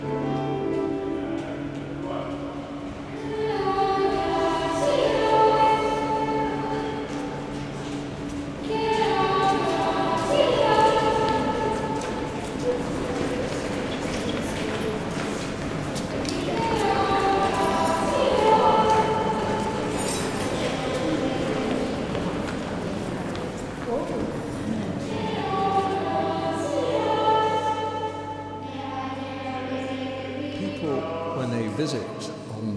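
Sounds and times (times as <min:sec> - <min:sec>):
steady low hum: 0:00.0 - 0:32.7
voices murmuring and inside a cathedral: 0:00.0 - 0:32.7
faint footsteps clattering: 0:06.6 - 0:26.0.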